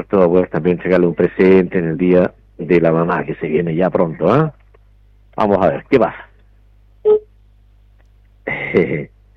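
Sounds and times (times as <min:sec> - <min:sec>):
speech: 0:00.0 - 0:04.6, 0:05.4 - 0:06.3, 0:07.0 - 0:07.3, 0:08.7 - 0:09.1
longer buzzier telephone dialing tone: 0:07.0 - 0:07.3
short electronic telephone beep: 0:07.1 - 0:07.3.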